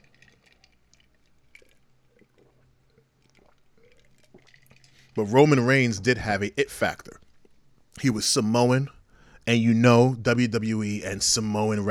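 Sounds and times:
person sipping water: 0.0s - 5.2s, 7.0s - 8.0s
speech: 5.2s - 7.1s, 8.0s - 11.8s.

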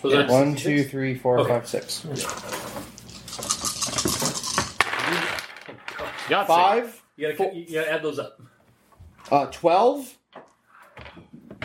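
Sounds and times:
speech: 0.0s - 2.6s, 6.3s - 8.5s, 9.3s - 10.2s
six dice rolling and clattering across a table during a tabletop roleplaying game: 2.2s - 5.9s.

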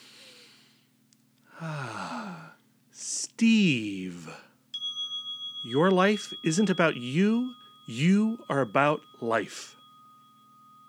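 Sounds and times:
deep breath through the nose to clear the nasal passages: 0.0s - 0.8s
speech: 3.4s - 4.4s, 5.7s - 9.8s.

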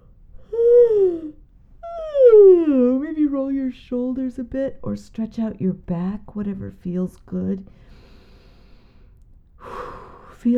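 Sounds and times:
person yawning with a voiced falling groan: 0.5s - 2.7s
speech: 3.4s - 7.8s.

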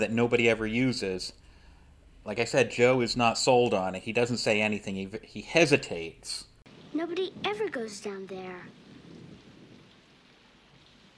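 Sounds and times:
speech: 0.0s - 1.4s, 2.2s - 8.8s
soft hiss of rain: 0.0s - 11.1s
rumble of thunder from outside: 6.7s - 11.1s.

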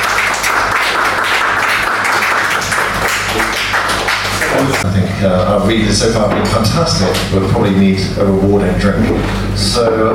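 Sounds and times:
room full of people applauding: 0.0s - 4.9s
speech: 5.2s - 10.1s.

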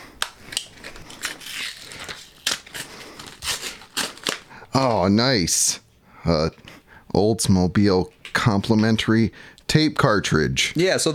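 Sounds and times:
wrapping paper crinkling and tearing as a present is unwrapped: 0.2s - 4.6s
speech: 4.8s - 11.1s.

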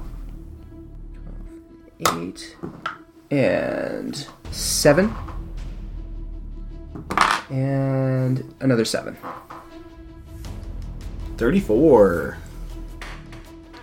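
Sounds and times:
speech: 2.0s - 5.3s, 7.5s - 9.5s, 11.4s - 12.4s
dice dropping and clattering on a table: 7.1s - 7.5s.

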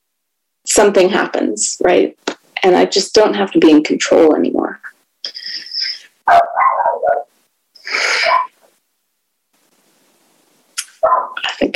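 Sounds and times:
speech: 0.8s - 5.4s, 6.3s - 6.5s
dog barking, yelping and whining: 6.2s - 7.4s, 8.0s - 8.7s, 10.9s - 11.4s.

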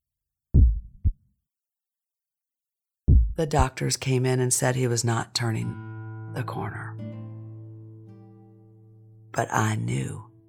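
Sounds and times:
slow faint heartbeat: 0.6s - 1.2s, 3.1s - 3.7s
speech: 3.4s - 7.0s, 9.4s - 10.3s.

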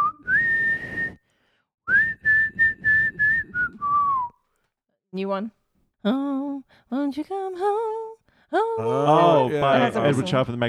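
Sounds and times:
person whistling a song: 0.0s - 1.3s, 1.9s - 4.4s
speech: 5.2s - 10.6s.

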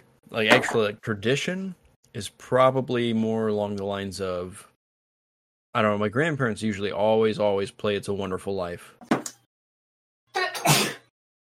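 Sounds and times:
speech: 0.3s - 4.7s, 5.8s - 9.2s
woman sneezing: 10.4s - 11.1s.

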